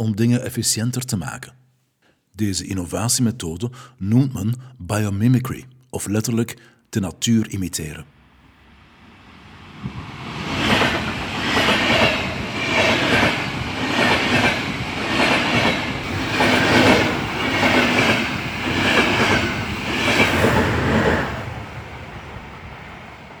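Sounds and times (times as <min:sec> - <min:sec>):
speech: 0:00.0 - 0:01.6, 0:02.4 - 0:08.1
Japanese high-speed bullet train rushing past: 0:09.0 - 0:23.3.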